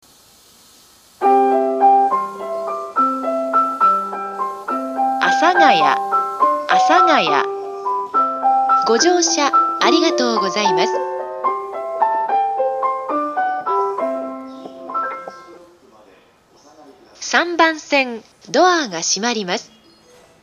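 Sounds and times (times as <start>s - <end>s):
train station departure melody: 1.2s - 15.8s
train arrival announcement: 3.0s - 7.6s, 8.2s - 12.6s, 13.3s - 19.8s.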